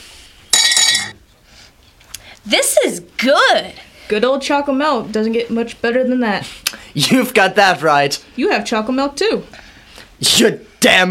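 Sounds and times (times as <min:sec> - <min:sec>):
glasses clinking together in a toast: 0:00.5 - 0:01.2
speech: 0:02.4 - 0:09.6, 0:10.2 - 0:11.1.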